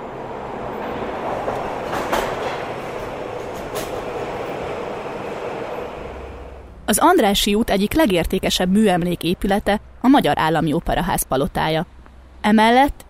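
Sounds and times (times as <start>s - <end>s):
sharp rail clacks: 0.0s - 6.8s
Millennium Underground Railway train rumbling beneath Andrássy út: 0.0s - 13.0s
speech: 6.9s - 13.0s.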